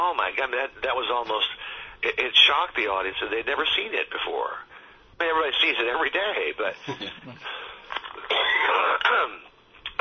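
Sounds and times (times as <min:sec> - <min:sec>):
speech: 0:00.0 - 0:08.5
person coughing during a conversation: 0:06.8 - 0:07.6, 0:08.3 - 0:08.8.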